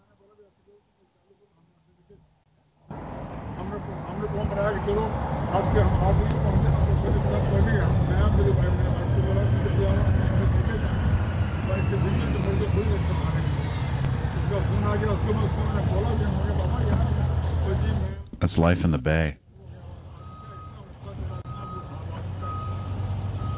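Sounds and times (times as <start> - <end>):
street traffic rumble in the Bay Area: 2.8 - 23.5
speech: 4.4 - 10.5, 11.7 - 13.4, 14.5 - 19.4
man yelling into cell phone on a street in the Bay Area: 18.4 - 19.4
bus reversing alarm beeping: 20.2 - 23.5.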